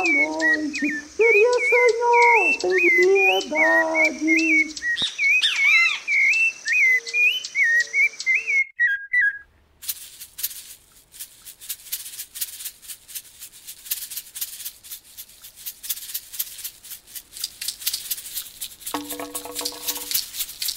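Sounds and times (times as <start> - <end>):
small birds singing: 0.0 - 9.5, 19.0 - 20.7
speech: 0.8 - 1.1.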